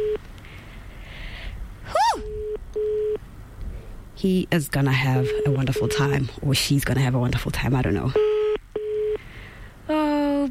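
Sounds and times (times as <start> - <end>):
outgoing phone call ringing tone: 0.0 - 0.2, 2.3 - 3.2, 5.2 - 6.3, 8.1 - 9.2
speech: 4.2 - 8.3.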